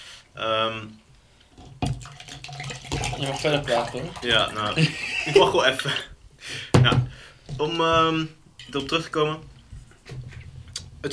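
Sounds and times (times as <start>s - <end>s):
speech: 0.4s - 1.0s, 3.2s - 9.5s
water poured loudly into a glass: 2.0s - 4.8s
laughter: 4.7s - 6.0s.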